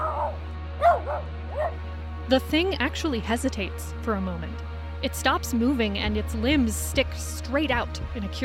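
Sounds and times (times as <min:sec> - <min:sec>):
deep gruff dog barks: 0:00.0 - 0:01.8
speech: 0:02.3 - 0:08.4.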